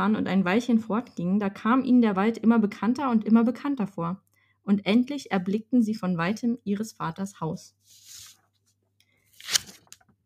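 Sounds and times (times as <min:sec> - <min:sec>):
speech: 0:00.0 - 0:08.1
book page being turned: 0:07.8 - 0:10.1.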